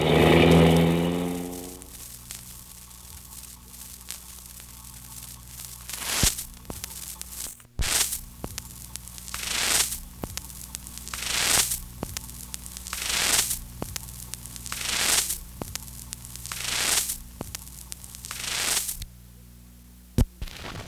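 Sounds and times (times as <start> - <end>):
car engine accelerating and roaring: 0.0 - 2.0
steady hiss of road noise: 0.0 - 19.0.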